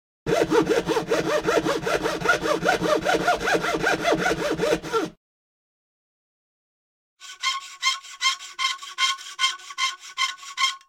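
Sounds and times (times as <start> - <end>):
filing: 0.3 - 5.2, 7.2 - 10.8.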